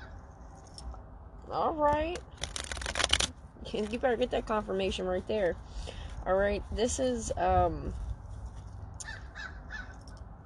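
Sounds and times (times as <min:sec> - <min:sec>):
low rumbling outdoor background: 0:00.0 - 0:10.4
speech: 0:01.5 - 0:02.4, 0:03.6 - 0:08.1
crows cawing: 0:09.0 - 0:10.0.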